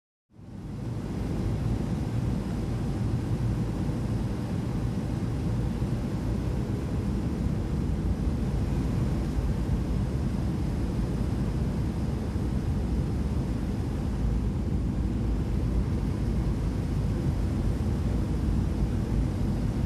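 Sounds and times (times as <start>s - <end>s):
aircraft engine bay hum: 0.4s - 19.8s.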